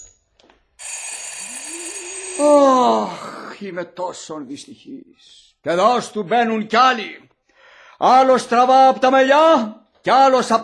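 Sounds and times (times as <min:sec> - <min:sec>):
electric bell trilling: 0:00.8 - 0:02.7
speech: 0:02.4 - 0:07.3, 0:08.0 - 0:10.6.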